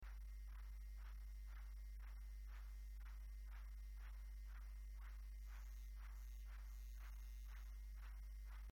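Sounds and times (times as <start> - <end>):
MS-20 synthesizer hand claps: 0.0 - 8.7.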